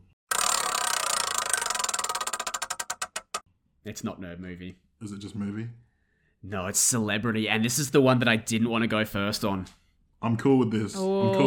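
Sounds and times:
prize wheel spinning during a game: 0:00.3 - 0:03.4
speech: 0:03.8 - 0:05.8, 0:06.4 - 0:11.4.

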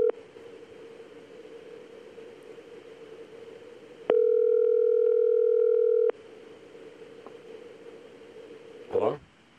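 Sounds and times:
telephone line hum with a hissy tone: 0:00.0 - 0:08.9
loud electronic telephone ringback tone: 0:04.1 - 0:06.1.

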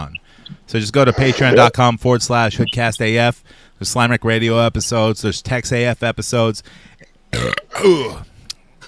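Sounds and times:
speech: 0:00.0 - 0:08.3
loud burp: 0:07.3 - 0:08.2.

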